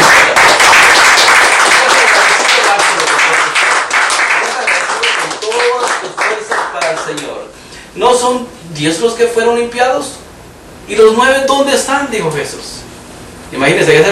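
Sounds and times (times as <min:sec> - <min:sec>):
crowd applauding: 0:00.0 - 0:07.4
speech: 0:08.3 - 0:10.2, 0:10.9 - 0:12.8, 0:13.5 - 0:14.1.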